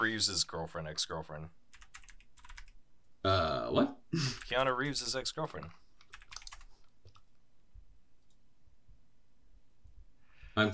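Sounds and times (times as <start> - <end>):
speech: 0.0 - 1.7, 3.2 - 5.8, 10.6 - 10.7
soft hiss: 0.0 - 10.7
typing on a computer keyboard: 1.7 - 2.8, 6.0 - 7.2.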